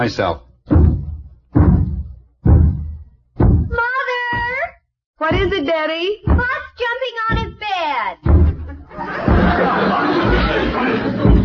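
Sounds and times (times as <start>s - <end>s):
speech: 0.0s - 0.5s, 5.2s - 8.4s
heavy knocks on a door: 0.7s - 4.6s, 6.2s - 6.7s, 8.2s - 9.8s
laughter: 8.7s - 11.4s.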